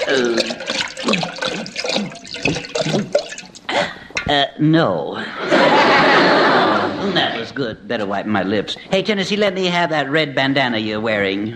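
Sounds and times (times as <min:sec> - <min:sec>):
water sloshing and gurgling in a canteen: 0:00.0 - 0:03.7
speech: 0:00.1 - 0:01.2, 0:04.3 - 0:05.3, 0:07.0 - 0:11.5
laughter: 0:05.2 - 0:07.6.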